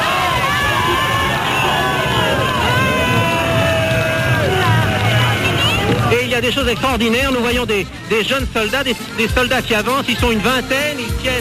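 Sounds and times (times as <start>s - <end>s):
large crowd singing and shouting in celebration of victory in Paris: 0.0s - 7.4s
speech: 6.4s - 11.3s.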